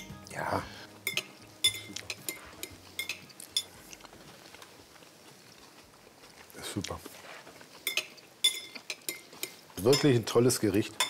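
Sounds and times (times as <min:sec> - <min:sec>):
speech: 0:00.4 - 0:00.8, 0:09.8 - 0:11.0
cutlery clinking against a plate as a knife cuts through a filled dish: 0:01.1 - 0:03.7, 0:07.8 - 0:10.2.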